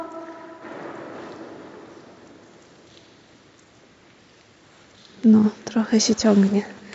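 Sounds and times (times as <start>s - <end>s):
person shouting a word with echo in a huge corridor: 0.0s - 0.6s
speech: 5.2s - 6.8s.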